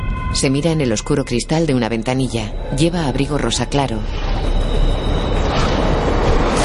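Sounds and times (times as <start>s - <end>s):
thin high whine of a subway train: 0.0s - 6.6s
speech: 0.4s - 5.0s
subway train arriving at a station: 2.3s - 6.6s.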